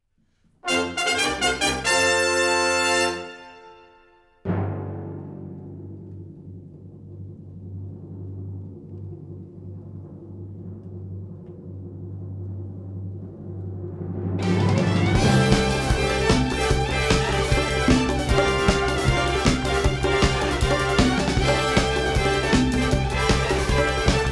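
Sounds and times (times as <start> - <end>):
brass fanfare: 0.6 - 4.6, 14.4 - 24.3.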